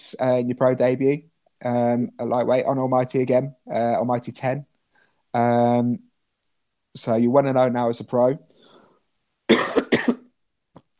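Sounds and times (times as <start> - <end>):
speech: 0.1 - 4.7, 5.3 - 6.1, 7.0 - 8.5
harsh chesty coughs from a person with a possible chest infection: 9.5 - 10.3.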